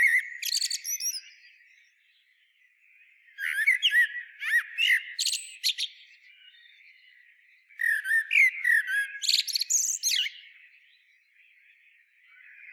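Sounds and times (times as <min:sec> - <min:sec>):
Eurasian blackbird Turdus merula singing: 0:00.0 - 0:12.7.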